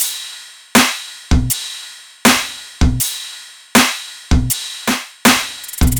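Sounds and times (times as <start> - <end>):
drum loop: 0.8 - 1.6, 2.3 - 3.2, 3.8 - 5.9.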